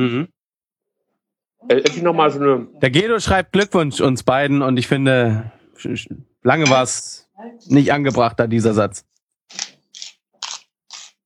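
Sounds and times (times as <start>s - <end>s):
speech: 0.0s - 0.4s, 1.6s - 9.6s
crisp crunching of vegetables being chewed: 9.5s - 11.2s.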